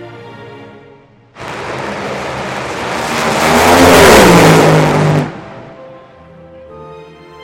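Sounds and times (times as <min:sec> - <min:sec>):
race car engine revving during a test lap: 0:01.4 - 0:06.1.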